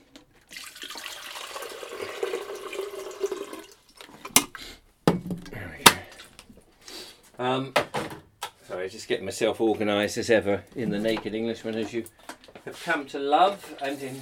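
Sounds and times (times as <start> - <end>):
water pouring into a kettle: 0.5 - 4.0
speech: 7.4 - 7.9, 8.8 - 14.1.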